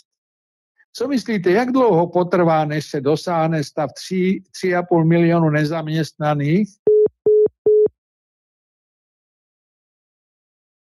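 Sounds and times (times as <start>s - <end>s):
speech: 1.0s - 6.8s
phone busy tone after a call drops: 6.9s - 7.9s.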